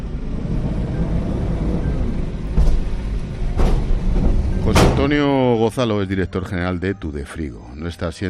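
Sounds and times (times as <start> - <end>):
truck engines idling at an industrial estate on the outskirts of Tudela: 0.0 - 7.2
sharp metallic clunks as trucks are loaded with goods: 2.3 - 5.6
speech: 5.0 - 8.2.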